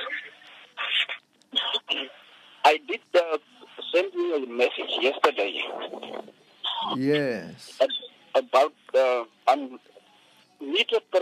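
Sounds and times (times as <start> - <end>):
thin telephone voice cutting in and out: 0.0 - 11.2
speech: 4.0 - 6.4, 7.0 - 7.8, 10.9 - 11.2.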